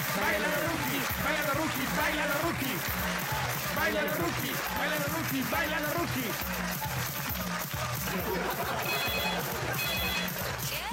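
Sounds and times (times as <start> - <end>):
laughter: 0.0 - 10.8
speech: 3.9 - 7.1, 8.0 - 10.9
telephone ringing with a high electronic trill: 8.7 - 10.4.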